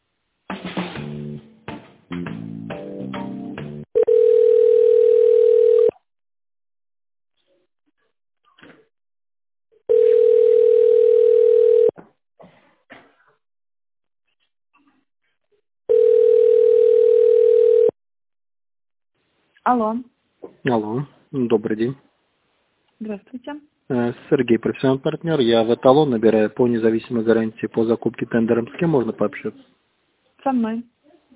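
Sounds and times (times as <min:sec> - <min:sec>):
telephone line tones while a call is being transferred: 0:04.0 - 0:06.0, 0:09.9 - 0:11.9, 0:15.9 - 0:18.0
speech: 0:19.7 - 0:22.1, 0:23.0 - 0:29.8, 0:30.4 - 0:30.9.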